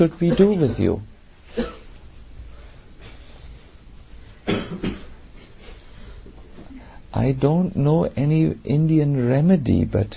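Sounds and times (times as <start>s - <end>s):
speech: 0.0s - 1.1s, 7.2s - 10.1s
low hush: 0.0s - 10.1s
audience members coughing: 4.4s - 5.2s.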